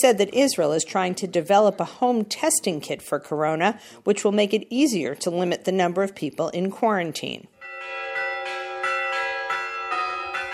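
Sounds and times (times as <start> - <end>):
speech: 0.0 - 7.5
church bells ringing out over Manger Square in Bethlehem: 7.6 - 10.5.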